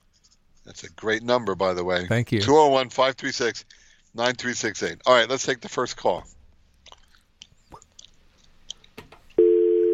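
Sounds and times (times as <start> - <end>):
speech: 0.7 - 6.4
caller's mouth clicks and smacks over a phone line: 6.8 - 9.0.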